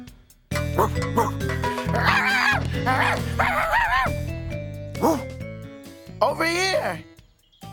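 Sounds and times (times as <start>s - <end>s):
bouncy steady music bed: 0.5s - 7.1s
speech: 0.8s - 3.6s, 6.5s - 7.1s
bright yelping dog barks: 1.9s - 4.1s.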